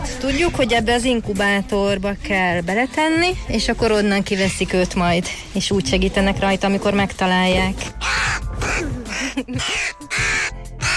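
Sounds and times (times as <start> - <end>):
speech: 0.2 - 8.2, 9.4 - 9.9
hooded crow cawing: 7.9 - 10.9.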